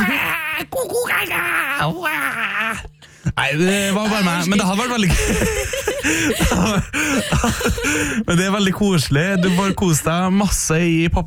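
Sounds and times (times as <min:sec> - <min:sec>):
adult voice imitating a wailing baby: 0:00.0 - 0:02.9
speech: 0:00.8 - 0:11.2
laughter: 0:03.5 - 0:10.2.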